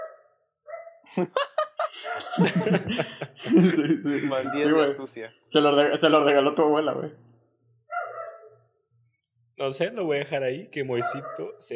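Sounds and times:
single drawn-out dog bark: 0:00.0 - 0:01.0, 0:04.3 - 0:04.8, 0:07.9 - 0:08.6, 0:10.9 - 0:11.6
speech: 0:01.1 - 0:07.3, 0:09.6 - 0:11.7
laughter: 0:01.2 - 0:05.0.

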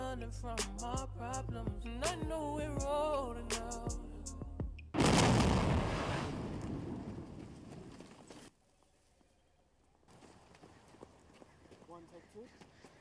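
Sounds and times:
speech: 0:00.2 - 0:04.1, 0:12.4 - 0:12.7
rumbling crackling roar: 0:05.0 - 0:07.8
explosion sound effect: 0:05.0 - 0:08.1.

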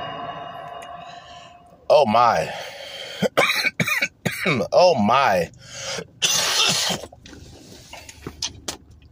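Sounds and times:
speech: 0:02.0 - 0:03.4, 0:04.4 - 0:06.1, 0:06.9 - 0:07.1
man coughing while smoking: 0:03.1 - 0:04.7.

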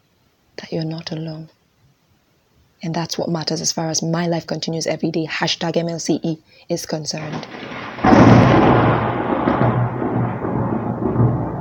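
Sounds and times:
speech: 0:00.6 - 0:01.6, 0:02.8 - 0:07.8
thunder rumbling from a thunderstorm: 0:07.2 - 0:11.5.

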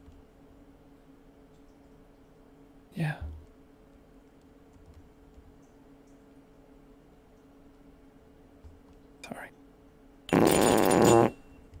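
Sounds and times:
speech: 0:03.0 - 0:03.3
loud buzzy fart: 0:10.3 - 0:11.4.

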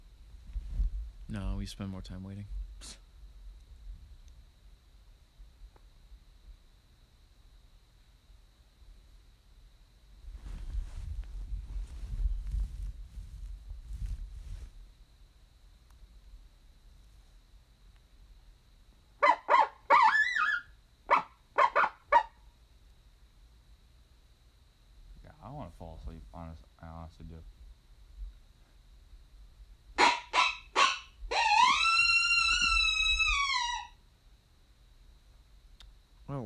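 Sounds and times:
quiet low rumble: 0:00.0 - 0:19.2, 0:22.4 - 0:30.0
speech: 0:01.3 - 0:03.0
coyote barking, yipping and howling: 0:19.2 - 0:22.4, 0:30.0 - 0:34.0.

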